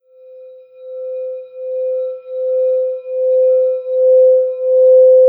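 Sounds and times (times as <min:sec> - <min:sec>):
singing bowls ringing: 0:00.3 - 0:05.1.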